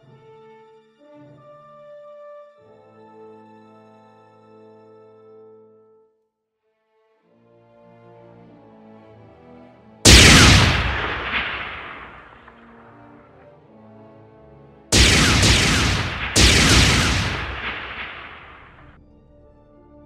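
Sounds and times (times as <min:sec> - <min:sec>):
loud explosion sound effects: 0:10.1 - 0:12.8, 0:15.0 - 0:18.9.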